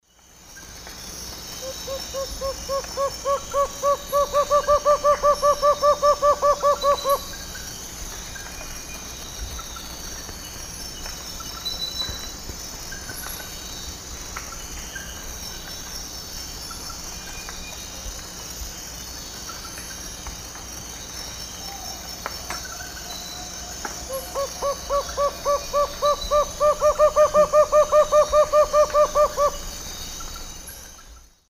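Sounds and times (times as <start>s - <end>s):
Megascops watsonii alternate song in the Eastern Lowlands of South America: 1.5s - 7.5s, 22.6s - 31.2s.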